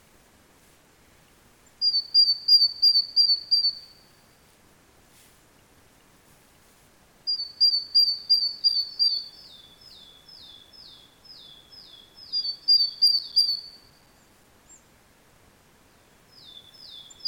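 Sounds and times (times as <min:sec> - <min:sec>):
steady low background noise: 0:00.0 - 0:17.2
great tit Parus major calls: 0:01.8 - 0:04.2, 0:07.3 - 0:14.0, 0:16.4 - 0:17.2.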